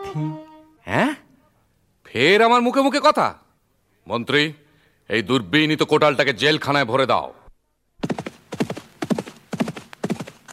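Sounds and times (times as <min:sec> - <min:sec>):
speech: 0:00.1 - 0:01.2, 0:02.2 - 0:03.4, 0:04.0 - 0:07.4
hooves of a galloping horse carrying a rider: 0:08.0 - 0:10.5.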